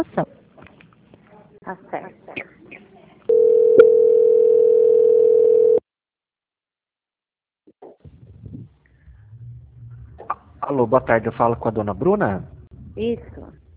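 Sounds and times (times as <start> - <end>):
speech: 0.0 - 0.4, 1.7 - 2.5, 10.8 - 13.6
telephone line tone during a call transfer: 3.3 - 5.8.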